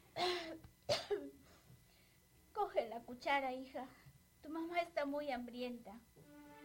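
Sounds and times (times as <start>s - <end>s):
woman coughing: 0.2s - 1.4s
speech: 2.8s - 6.1s.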